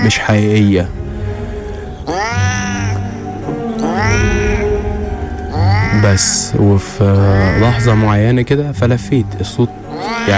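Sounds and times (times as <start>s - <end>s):
speech: 0.0s - 1.0s, 6.0s - 10.3s
group of cats yowling and caterwauling: 2.1s - 6.5s, 7.2s - 8.1s, 9.9s - 10.3s.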